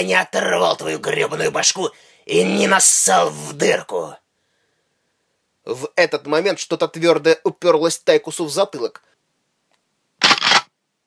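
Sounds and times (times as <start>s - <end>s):
speech: 0.0s - 4.2s, 5.6s - 9.1s
shotgun being cocked with metal clicks: 10.2s - 10.7s.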